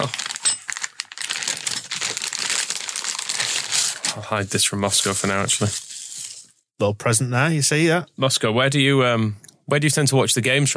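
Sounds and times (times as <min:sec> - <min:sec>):
speech: 0:00.0 - 0:00.2, 0:04.2 - 0:05.8, 0:06.8 - 0:10.7
plastic bag crinkling while handled: 0:00.0 - 0:06.5.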